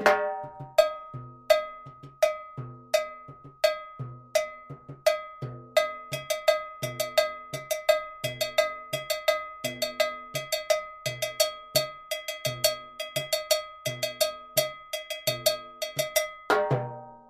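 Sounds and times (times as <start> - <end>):
LP cowbell: 0.1 - 17.2.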